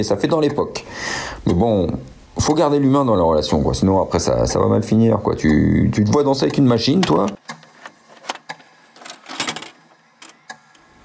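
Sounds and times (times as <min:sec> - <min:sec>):
speech: 0:00.0 - 0:07.6
video cassette player fast-forwarding a tape: 0:06.8 - 0:11.0.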